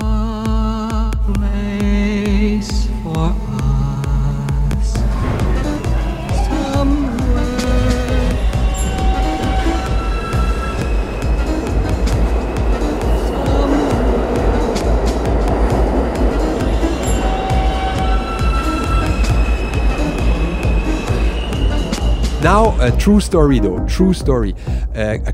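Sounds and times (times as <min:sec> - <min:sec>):
train rolling along the rails: 0:00.0 - 0:25.0
electric train traction motor whine: 0:04.8 - 0:23.0
speech: 0:22.8 - 0:25.3.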